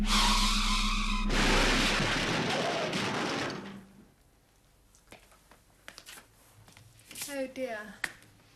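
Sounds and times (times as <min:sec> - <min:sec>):
loud roaring car crash during crash test: 0:00.0 - 0:04.1
scattered small clatters and debris sounds: 0:01.3 - 0:04.1
speech: 0:07.4 - 0:08.1.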